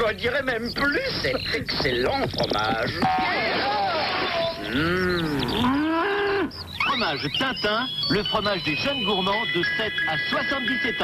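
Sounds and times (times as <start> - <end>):
speech: 0.1 - 5.8, 6.9 - 11.0
cow mooing: 4.6 - 6.6.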